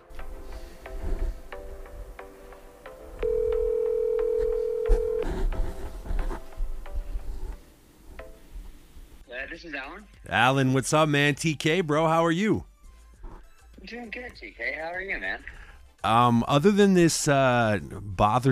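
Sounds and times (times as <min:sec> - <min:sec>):
soft music: 0:00.0 - 0:18.5
electronic phone call ringback tone: 0:03.2 - 0:05.3
speech: 0:09.6 - 0:12.7, 0:13.9 - 0:18.5.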